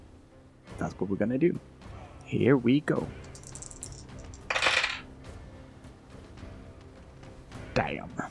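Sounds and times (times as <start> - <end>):
speech: 0.8 - 3.2
dice clattering across a hard surface: 3.2 - 5.0.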